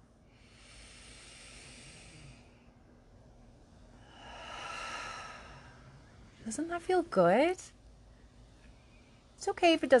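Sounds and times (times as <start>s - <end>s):
breath exhaled slowly through an open mouth during a relaxation exercise: 0.4s - 2.5s, 4.0s - 6.0s
speech: 6.5s - 7.8s, 9.4s - 9.9s.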